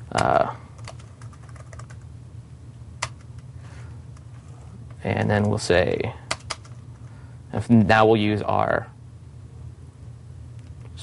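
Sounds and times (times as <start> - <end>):
low steady hum: 0.0 - 11.0
typing on a computer keyboard: 0.2 - 2.0, 6.3 - 6.8
speech: 5.0 - 6.2, 7.7 - 8.9.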